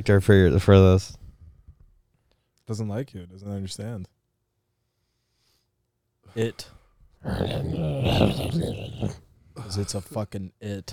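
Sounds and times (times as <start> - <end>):
speech: 0.0 - 1.2, 2.7 - 4.2, 6.3 - 10.9
cat growling while attacking a person: 7.2 - 9.2.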